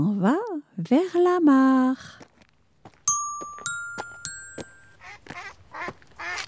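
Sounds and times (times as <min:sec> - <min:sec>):
speech: 0:00.0 - 0:02.2
ringing chime-like tones: 0:03.1 - 0:05.3.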